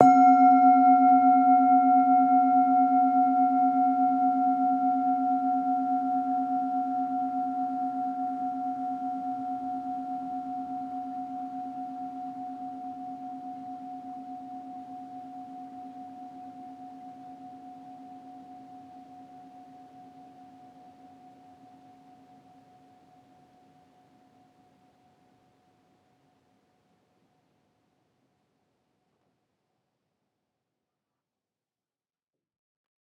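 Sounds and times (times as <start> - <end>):
medium bowl playing C3 moderately loud: 0.0 - 24.0.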